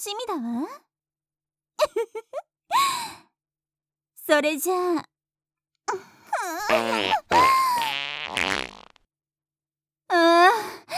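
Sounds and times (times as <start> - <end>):
speech: 0.0 - 0.9, 1.8 - 3.2, 4.3 - 5.1, 5.9 - 8.6, 10.1 - 10.9
loud drawn-out sputtering farts: 6.7 - 9.0.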